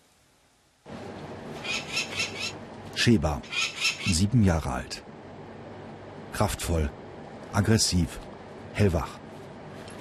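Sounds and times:
steady outdoor noise: 0:00.0 - 0:09.9
falcon giving shrill high-pitched calls: 0:01.6 - 0:02.6
speech: 0:03.0 - 0:05.1, 0:06.4 - 0:07.0, 0:07.6 - 0:09.2.

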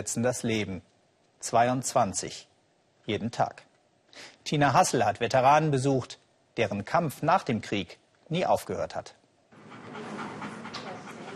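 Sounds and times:
speech: 0:00.0 - 0:02.5, 0:03.1 - 0:09.2
US war veteran's dog panting: 0:09.6 - 0:11.3.

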